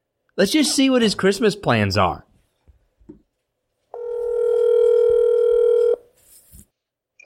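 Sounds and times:
speech: 0:00.4 - 0:02.3
telephone ringing tone on the line: 0:04.0 - 0:06.0.

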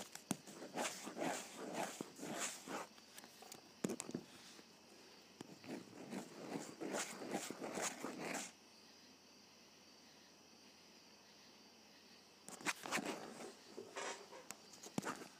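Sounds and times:
ballpoint pen scratching across paper while writing: 0:00.0 - 0:03.0, 0:05.4 - 0:08.5, 0:12.5 - 0:14.2.

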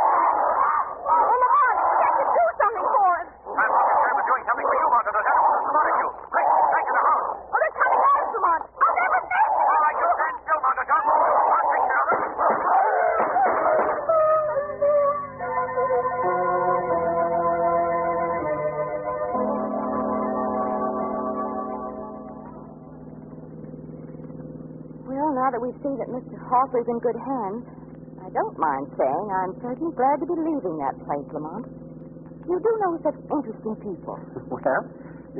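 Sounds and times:
large dogs barking and baying: 0:00.0 - 0:14.4
sustained musical tones: 0:02.4 - 0:35.3
speech: 0:26.5 - 0:27.8, 0:28.4 - 0:31.8, 0:32.5 - 0:35.3.

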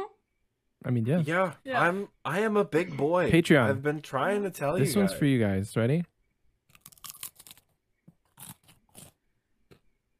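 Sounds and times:
speech: 0:00.8 - 0:06.1
crunching potato chips: 0:06.7 - 0:09.2.

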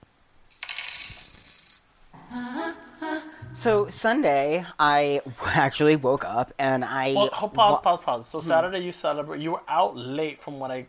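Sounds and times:
shower of coins clinking and jingling: 0:00.5 - 0:01.8
speech: 0:03.6 - 0:10.8.

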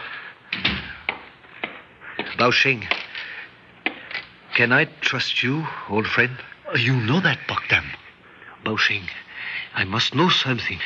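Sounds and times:
door pushed shut with a heavier thud: 0:00.5 - 0:01.0
speech: 0:02.4 - 0:03.0, 0:04.6 - 0:08.0, 0:08.6 - 0:10.8.

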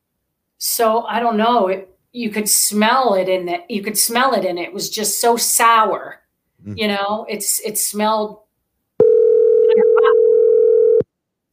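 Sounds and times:
speech: 0:00.7 - 0:08.4
steady loud telephone dial tone: 0:09.0 - 0:11.0.

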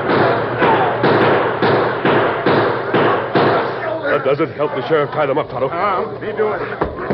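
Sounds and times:
gunshots in a Western-style radio drama shootout: 0:00.0 - 0:03.8
speech: 0:04.3 - 0:07.0.

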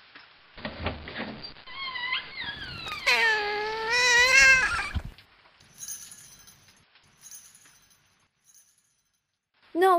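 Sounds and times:
cat meowing: 0:01.8 - 0:05.1
faint clinks: 0:05.6 - 0:09.4.

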